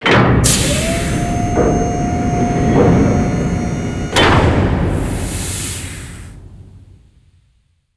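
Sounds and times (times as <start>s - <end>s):
vault door: 0.0s - 5.8s.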